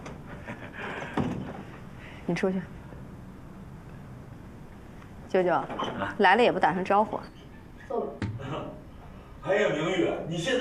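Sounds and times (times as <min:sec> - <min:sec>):
speech: 0:02.3 - 0:02.8, 0:05.3 - 0:08.3, 0:09.4 - 0:10.5
door being pulled shut: 0:08.2 - 0:08.5.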